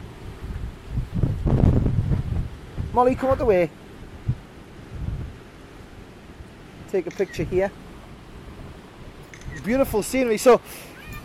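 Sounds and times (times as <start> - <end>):
wind blasting through portals along an open wall: 0.0 - 11.2
speech: 3.0 - 3.8, 6.9 - 7.8, 9.6 - 10.9.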